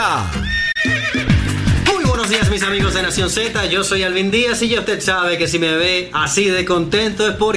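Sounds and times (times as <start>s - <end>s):
speech: 0.0s - 0.6s, 2.3s - 7.5s
horse neighing: 0.3s - 1.5s.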